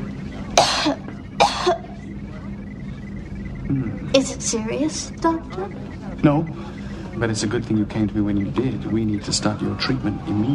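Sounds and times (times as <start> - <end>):
quiet hum: 0.0 - 10.5
person coughing: 0.6 - 2.0
speech: 0.8 - 1.1, 3.7 - 10.5.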